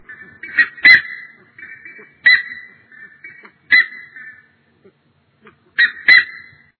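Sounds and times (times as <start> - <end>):
buff-necked ibis calling: 0.0 - 6.7.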